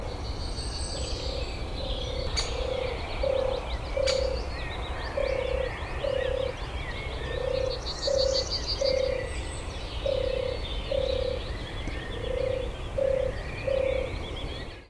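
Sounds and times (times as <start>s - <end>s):
turtle dove: 0.0s - 14.8s.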